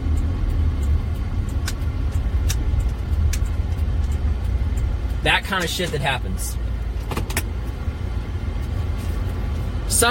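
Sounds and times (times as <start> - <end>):
car being driven straight along a road: 0.0 - 10.0
speech: 5.2 - 6.7.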